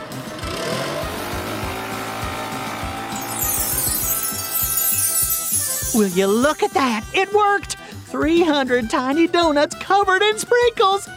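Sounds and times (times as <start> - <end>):
leaf blower running in a kitchen blasting sprinkles onto tiny doughnuts: 0.0 - 6.8
speech: 6.0 - 11.1.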